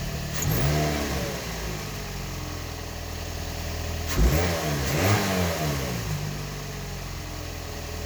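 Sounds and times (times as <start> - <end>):
engine revving: 0.2 - 7.9.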